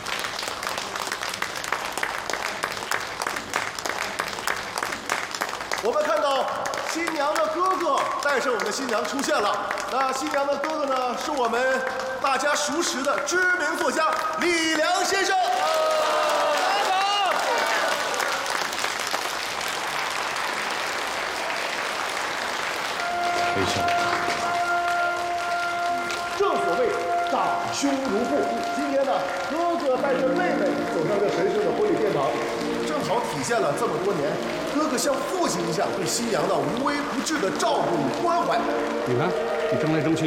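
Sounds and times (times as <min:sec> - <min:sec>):
large crowd applauding warmly at a wedding: 0:00.0 - 0:40.2
speech: 0:05.8 - 0:15.7, 0:27.8 - 0:40.2
voices or melodic sound: 0:23.0 - 0:40.2.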